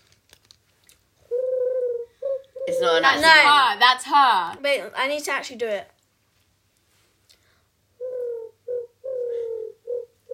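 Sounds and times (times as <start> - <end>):
person imitating a pigeon cooing: 1.3 - 3.5, 8.0 - 10.3
speech: 2.8 - 5.9.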